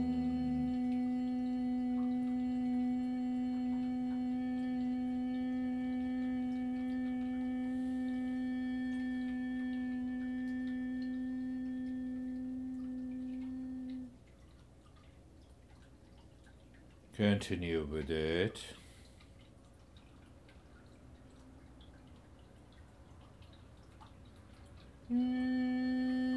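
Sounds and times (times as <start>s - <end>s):
person humming during a breathing exercise: 0.0s - 14.2s, 25.1s - 26.3s
speech: 17.2s - 18.8s.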